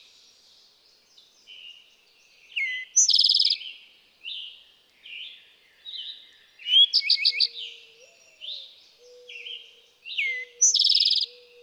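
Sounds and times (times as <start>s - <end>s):
Eastern towhee song with fast trills: 0.0s - 3.6s, 6.0s - 11.6s.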